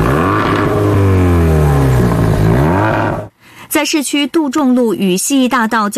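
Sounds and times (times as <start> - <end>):
loud throaty engine of an illegally modified motor vehicle revving: 0.0 - 3.3
speech: 3.8 - 5.9.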